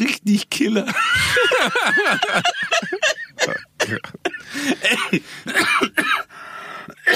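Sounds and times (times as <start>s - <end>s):
speech: 0.0s - 3.2s
laughter: 0.9s - 5.4s
harsh coughing: 2.7s - 7.1s.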